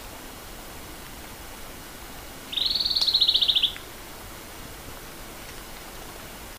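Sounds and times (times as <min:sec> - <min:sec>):
Pene Sigi bird shrill trill in Papua New Guinea: 0:02.5 - 0:03.8.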